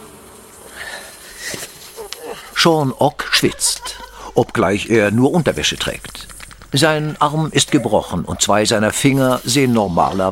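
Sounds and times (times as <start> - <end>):
wasps buzzing: 0.0 - 10.2
laughter: 1.5 - 9.0
speech: 2.4 - 10.2.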